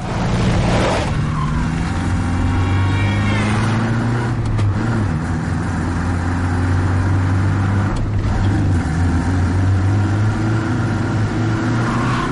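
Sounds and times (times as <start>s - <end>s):
tires squealing and skidding: 0.0s - 5.1s, 11.6s - 12.3s
car engines revving in a chase: 0.0s - 12.3s.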